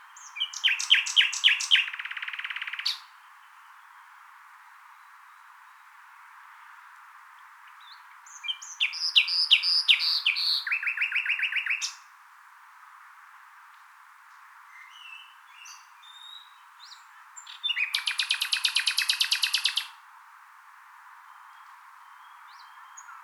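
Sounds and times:
common nightingale lively run of varied chirps and descending repeated notes: 0.0s - 3.8s, 7.6s - 12.0s, 14.7s - 20.0s, 21.3s - 23.2s.

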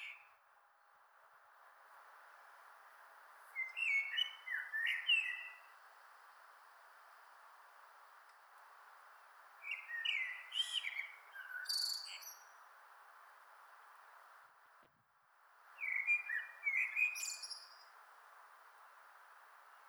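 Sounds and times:
common blackbird Turdus merula singing: 3.6s - 5.6s, 9.6s - 12.5s, 15.8s - 17.8s.

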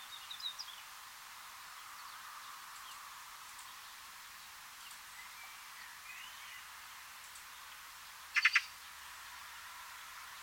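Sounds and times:
faint steady background hiss: 0.0s - 10.4s
Eurasian magpie Pica pica harsh chatter: 8.4s - 8.7s.

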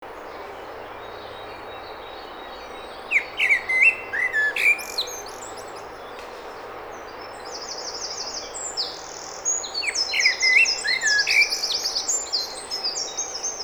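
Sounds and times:
common blackbird Turdus merula singing: 2.5s - 5.8s, 8.8s - 13.6s.

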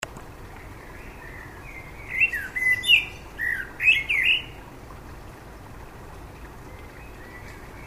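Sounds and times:
common blackbird Turdus merula singing: 0.8s - 4.6s, 6.7s - 7.8s.

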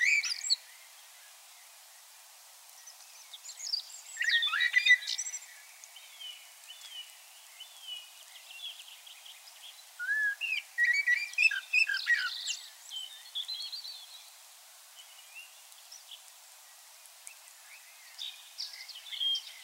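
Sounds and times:
common blackbird Turdus merula singing: 0.0s - 0.8s, 3.4s - 14.2s, 17.6s - 19.6s.

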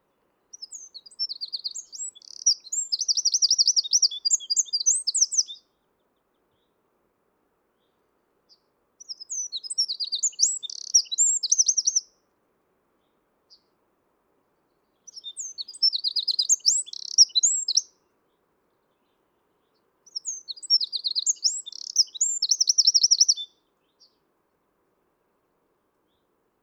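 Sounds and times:
Eurasian wren Troglodytes troglodytes singing: 0.5s - 5.6s, 9.0s - 12.1s, 15.0s - 17.9s, 20.1s - 24.2s.

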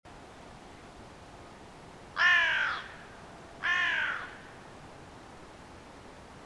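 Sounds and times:
faint background hiss: 0.1s - 6.4s
carrion crow cawing: 2.2s - 4.6s.

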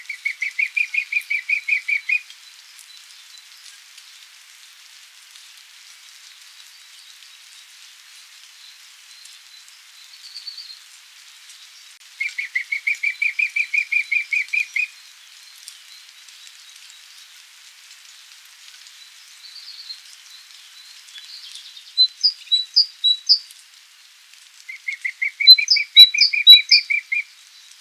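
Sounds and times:
Eurasian blackcap song runs with chirped notes: 0.0s - 3.1s, 11.6s - 16.3s, 19.0s - 23.5s, 24.7s - 27.7s.

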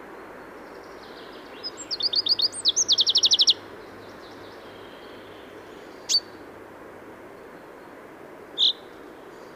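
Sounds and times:
low background noise: 0.0s - 9.5s
common chaffinch Fringilla coelebs song trill ending in a flourish: 0.6s - 6.3s, 8.6s - 9.5s.

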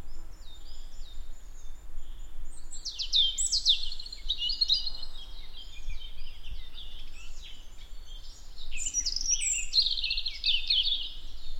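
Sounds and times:
European robin Erithacus rubecula singing: 0.0s - 11.5s
steady low background noise: 0.0s - 11.5s.

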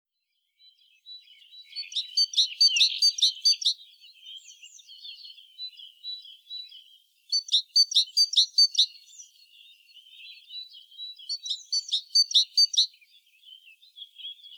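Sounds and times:
Parus major giving harsh buzzy chattering calls: 1.9s - 3.8s, 7.3s - 8.9s, 11.4s - 12.9s.

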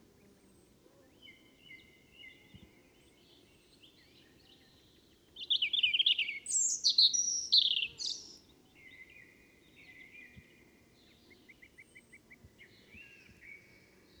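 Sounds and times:
low steady hiss: 0.0s - 14.1s
Erithacus rubecula European robin song with warbles and ticking notes: 1.1s - 14.1s.

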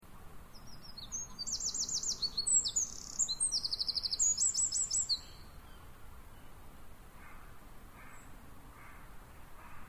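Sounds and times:
faint background noise: 0.0s - 9.8s
Eurasian wren Troglodytes troglodytes singing shrill trills: 0.5s - 5.4s.

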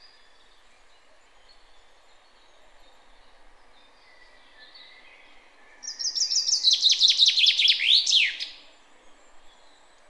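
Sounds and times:
soft background hiss: 0.0s - 10.0s
common chaffinch Fringilla coelebs singing: 3.8s - 8.7s.

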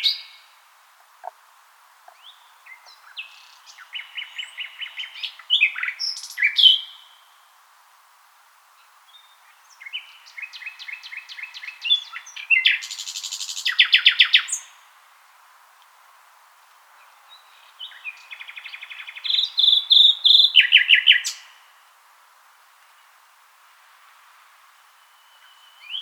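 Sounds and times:
common nightingale Luscinia megarhynchos singing: 0.0s - 1.4s, 2.0s - 7.2s, 8.8s - 14.8s, 17.0s - 21.6s, 24.8s - 26.0s.

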